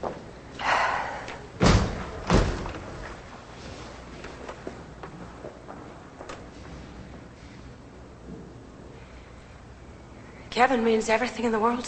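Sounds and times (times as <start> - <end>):
two heavy doors swinging shut with booming thuds: 1.6 - 3.1
speech: 10.6 - 11.8.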